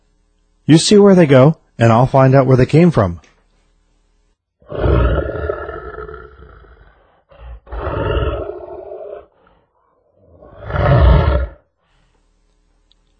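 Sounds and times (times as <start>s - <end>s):
speech: 0.7s - 3.3s
lion roaring: 4.6s - 11.6s.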